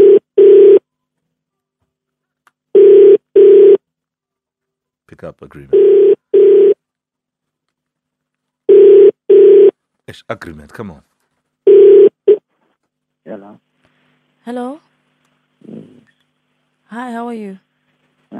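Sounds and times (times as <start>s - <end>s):
telephone ringback tone on an outgoing call: 0.0s - 0.8s, 2.8s - 3.8s, 5.7s - 6.8s, 8.7s - 9.7s, 11.7s - 12.4s
speech: 5.1s - 6.2s, 10.1s - 11.1s, 14.4s - 14.9s, 16.9s - 17.7s.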